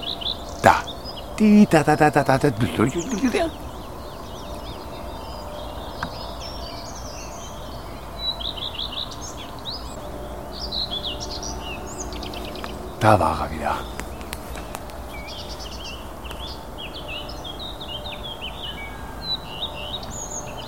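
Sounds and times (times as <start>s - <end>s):
other faint birds outdoors: 0.0s - 20.6s
songbird singing two-part song motif: 0.0s - 20.6s
laughter: 0.6s - 3.7s
speech: 0.6s - 3.7s, 13.0s - 13.9s.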